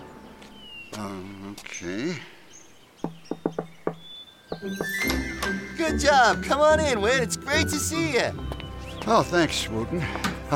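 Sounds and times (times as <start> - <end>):
speech: 1.0 - 2.4, 4.6 - 10.5
secret knock on a door: 3.0 - 4.7.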